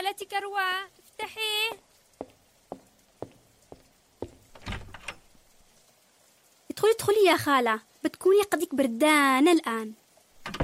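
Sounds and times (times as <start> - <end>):
soft steady hiss of rain: 0.0 - 10.6
speech: 0.1 - 2.3, 6.8 - 10.0
knocking on a door during rain: 4.2 - 5.1.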